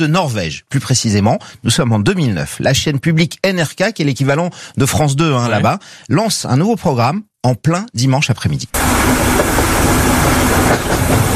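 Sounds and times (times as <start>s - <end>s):
speech: 0.0s - 9.5s
train pulling out of the Oslo station on the Oslo to Bergen line: 8.8s - 11.3s.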